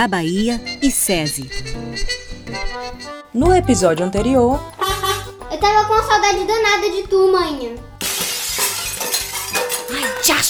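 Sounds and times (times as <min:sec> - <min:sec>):
speech: 0:00.0 - 0:04.9, 0:05.6 - 0:07.9
glass shattering: 0:08.0 - 0:10.4
glass shards tinkling and scattering: 0:08.1 - 0:10.0.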